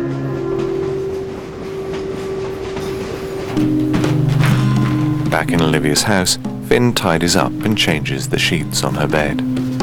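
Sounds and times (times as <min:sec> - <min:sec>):
faint rail clatter: 0:00.0 - 0:05.2
freight train rumbling past a depot: 0:00.0 - 0:09.6
speech: 0:05.4 - 0:09.7.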